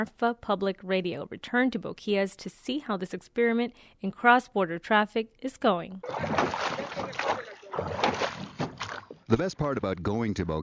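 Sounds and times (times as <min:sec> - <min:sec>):
speech: 0:00.0 - 0:08.2, 0:09.3 - 0:10.6
rowboat rowed across the Rio Grande, rushing water: 0:06.0 - 0:09.5.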